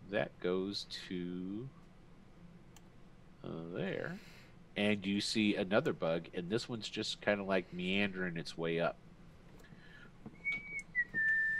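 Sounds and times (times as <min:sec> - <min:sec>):
faint hum: 0:00.0 - 0:11.5
speech: 0:00.1 - 0:01.8, 0:03.4 - 0:09.0
person whistling a short tune: 0:10.4 - 0:11.5.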